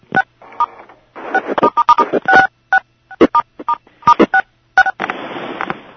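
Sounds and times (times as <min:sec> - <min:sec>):
hissy phone line static: 0:00.1 - 0:05.8
short electronic beeps over a phone line: 0:01.3 - 0:05.0.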